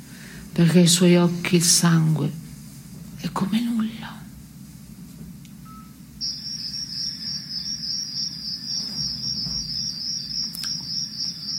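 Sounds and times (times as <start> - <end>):
low rumble: 0.0 - 11.0
speech: 0.6 - 2.4, 3.2 - 3.7
crickets chirping: 5.6 - 11.5.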